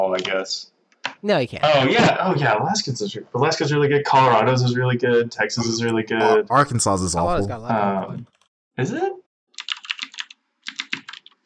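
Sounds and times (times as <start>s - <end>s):
speech: 0.0s - 9.2s
computer keyboard typing: 9.6s - 11.4s.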